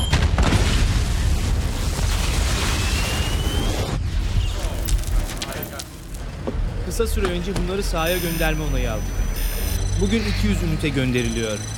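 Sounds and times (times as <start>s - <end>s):
crackling debris: 0.0s - 6.7s
explosion of a hex crystal set off by a sonic detonator: 0.0s - 6.9s
speech: 7.0s - 9.2s, 10.0s - 11.7s.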